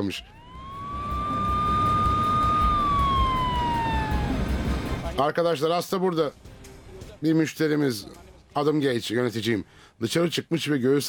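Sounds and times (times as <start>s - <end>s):
speech: 0.0s - 0.4s, 5.2s - 6.4s, 7.2s - 11.0s
ambulance siren sweeping past: 0.2s - 5.2s
low traffic rumble: 0.3s - 5.2s.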